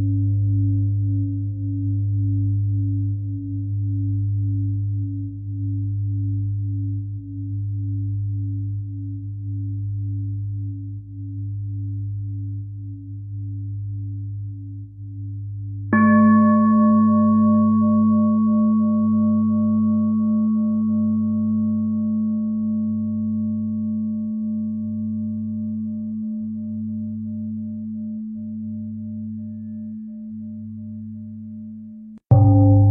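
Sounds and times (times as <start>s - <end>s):
deep singing bowl humming: 0.0s - 32.8s
brighter singing bowl struck: 15.9s - 32.8s.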